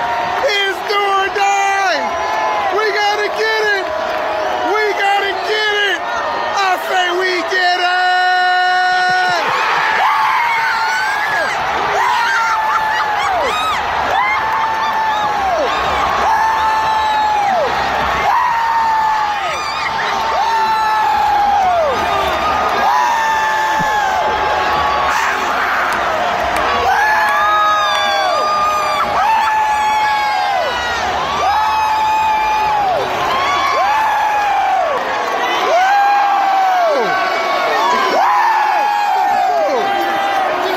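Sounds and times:
crowd of football fans screaming and cheering: 0.0 - 40.7
fans whooping and yelling: 8.1 - 22.0, 22.7 - 26.0, 26.8 - 40.7.

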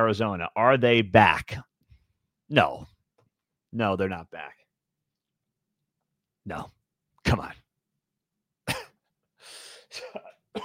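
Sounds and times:
speech: 0.0 - 1.7, 2.5 - 2.9, 3.7 - 4.6, 6.4 - 7.6
person coughing harshly: 8.7 - 9.0, 9.9 - 10.6
raspy throat clearing: 8.7 - 9.1, 9.9 - 10.6.

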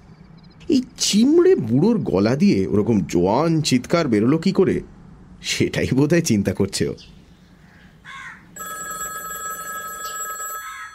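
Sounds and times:
speech: 0.7 - 7.2
telephone bell ringing: 8.6 - 10.9.

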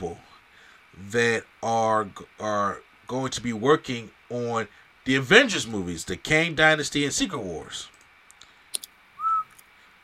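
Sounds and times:
speech: 0.0 - 0.3, 1.0 - 7.9
faint clicks: 7.9 - 9.7
single short whistled note: 9.2 - 9.6.

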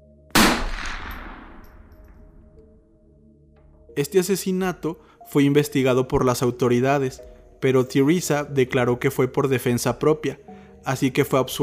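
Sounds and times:
rifle shot: 0.3 - 2.4
rifle shot echo rolling: 0.4 - 3.1
low hum: 0.4 - 3.2
speech: 4.0 - 11.6.

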